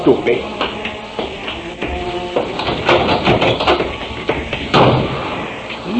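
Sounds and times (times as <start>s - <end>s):
knocks: 0.6s - 5.3s
door slammed shut hard by an angry man leaving: 1.9s - 5.5s.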